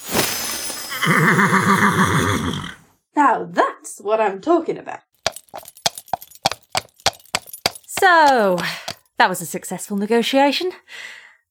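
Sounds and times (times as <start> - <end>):
horse neighing: 1.0 - 2.8
speech: 1.0 - 5.7, 8.0 - 11.2.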